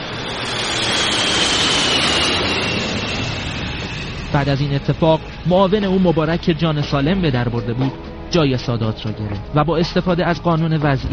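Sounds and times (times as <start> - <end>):
Mirage military jet aircraft roaring overhead in Egypt in October 1981: 0.0 - 9.6
speech: 4.3 - 11.1.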